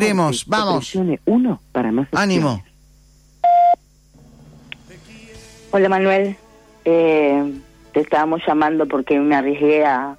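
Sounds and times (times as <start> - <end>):
speech: 0.0 - 2.7, 5.7 - 10.1
voicemail beep tone: 3.4 - 3.8.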